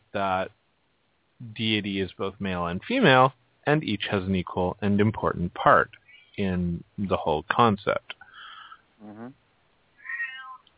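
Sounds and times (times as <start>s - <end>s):
speech: 0.1s - 0.6s, 1.4s - 8.2s, 9.0s - 9.4s
cat meowing quietly: 10.0s - 10.6s.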